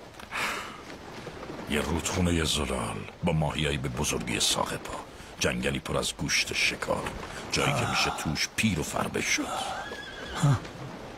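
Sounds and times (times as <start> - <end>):
speech: 1.7 - 9.8, 10.4 - 10.7
horse whinnying: 9.5 - 10.9.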